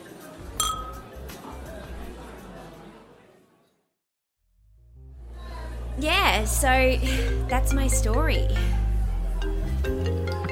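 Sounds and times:
busy crowd chatter: 0.0 - 3.8, 5.2 - 10.5
glasses clinking together in a toast: 0.6 - 1.2
speech: 6.0 - 8.8.

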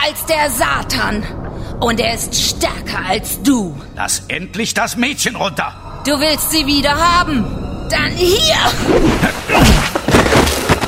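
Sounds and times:
speech: 0.1 - 9.9
two bodies crashing heavily to the floor: 9.2 - 10.8.

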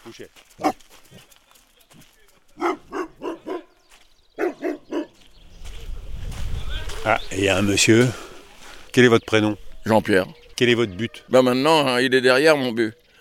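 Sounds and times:
speech: 0.0 - 1.3, 7.1 - 8.2, 9.0 - 13.0
dog barking: 0.6 - 0.8, 2.6 - 3.7, 4.4 - 5.2.

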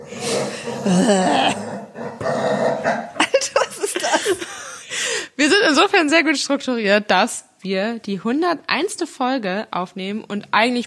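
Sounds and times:
dog growling and grumbling: 0.0 - 3.4
speech: 0.7 - 1.6, 5.8 - 10.8
laughter: 3.2 - 4.9.

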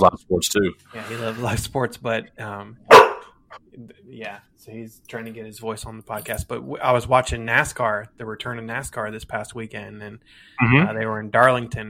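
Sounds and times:
speech: 0.0 - 3.0, 3.8 - 11.8
dog soft yip: 2.9 - 3.3
dog loud sharp bark: 2.9 - 3.4.

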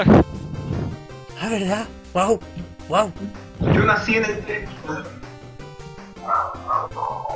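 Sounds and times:
speech: 0.0 - 0.3, 1.4 - 5.2, 6.3 - 7.3
dogs barking with sharp yaps and woofs: 6.1 - 7.3.

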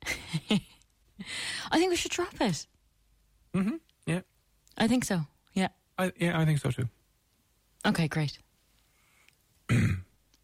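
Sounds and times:
speech: 0.5 - 2.7, 3.5 - 7.0, 7.8 - 8.4, 9.7 - 10.0
short harsh raspy cough: 9.7 - 10.1.

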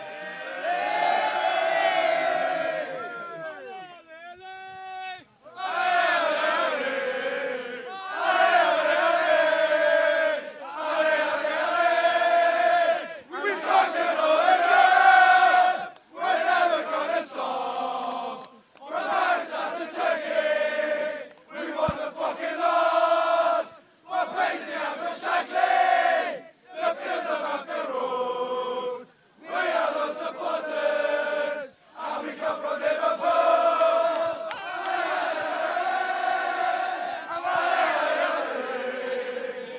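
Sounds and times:
football crowd chanting: 0.0 - 3.5, 5.4 - 39.7.

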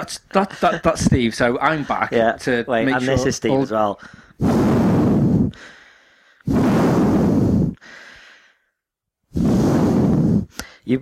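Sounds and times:
speech: 0.0 - 4.9, 5.5 - 5.8
man breathing heavily into the microphone: 4.0 - 10.9.

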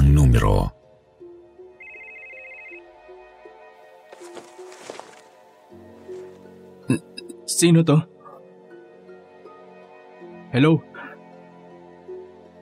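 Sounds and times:
cellphone ringing with an incoming call, electronic melodic ringtone: 1.8 - 2.9
speech: 6.9 - 8.1, 10.5 - 10.9.

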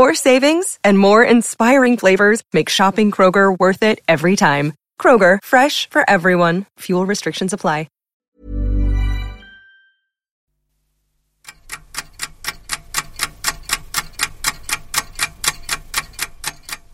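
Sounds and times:
speech: 0.0 - 8.6
small alarm clock ticking: 11.5 - 16.9.

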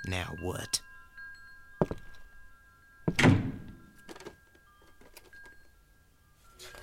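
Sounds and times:
speech: 0.1 - 0.9
door upstairs banging open with a heavy thunk: 3.1 - 3.8.

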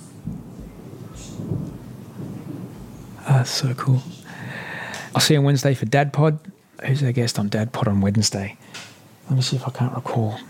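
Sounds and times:
low thunder rumbling: 0.0 - 5.8
steady rain: 0.0 - 10.4
speech: 3.4 - 4.2, 5.2 - 10.4.

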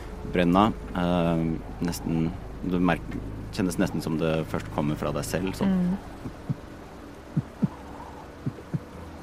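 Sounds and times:
soft hum: 0.0 - 9.2
speech: 0.4 - 6.5
low thudding heartbeat sound effect: 6.2 - 6.6, 7.3 - 9.0.

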